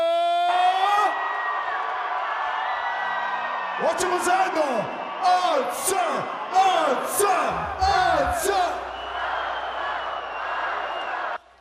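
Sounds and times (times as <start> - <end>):
large concert-hall crowd screaming and roaring for a singer: 0.0 - 11.6
speech: 3.8 - 8.8
single voice giving a held shout: 6.9 - 8.8.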